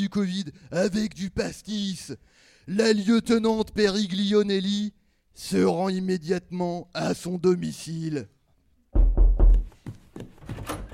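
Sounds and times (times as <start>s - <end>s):
speech: 0.0s - 9.0s
door sound effect heavy low thuds at a live public show: 9.0s - 9.7s.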